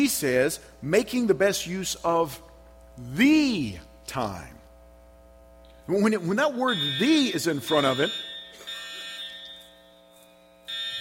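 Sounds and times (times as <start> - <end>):
speech: 0.0 - 4.6, 5.9 - 8.3
building fire alarm high-pitched tone: 6.4 - 10.9.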